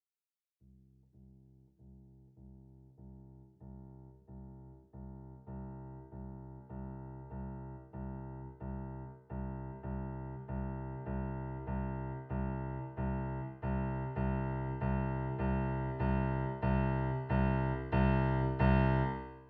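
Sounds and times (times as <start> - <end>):
Fazioli piano playing: 7.3 - 19.4.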